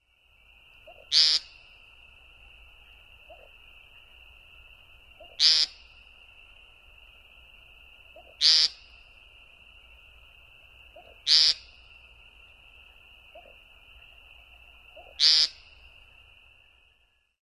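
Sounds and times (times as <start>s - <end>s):
peent calls: 0.6s - 16.6s.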